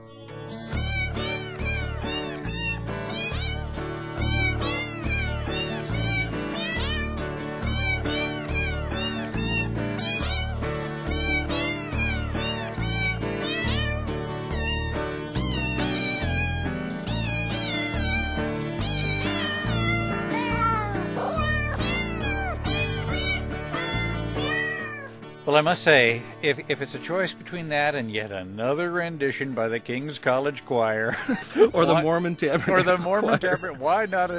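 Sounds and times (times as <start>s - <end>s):
cat meows edited into a Christmas carol melody: 0.6s - 25.2s, 33.2s - 34.3s
speech: 25.5s - 34.3s
laughter: 31.1s - 34.1s.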